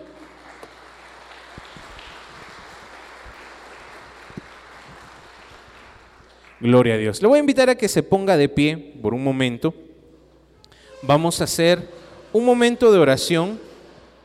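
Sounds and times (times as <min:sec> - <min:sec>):
audience applauding: 0:00.0 - 0:06.7
speech: 0:06.6 - 0:09.9, 0:11.0 - 0:13.7.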